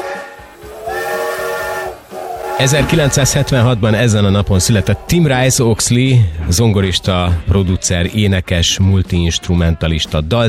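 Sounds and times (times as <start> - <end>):
steam locomotive whistle blowing: 0.0 - 5.6
steam hiss from a steam locomotive: 0.0 - 6.8
speech: 2.6 - 10.4.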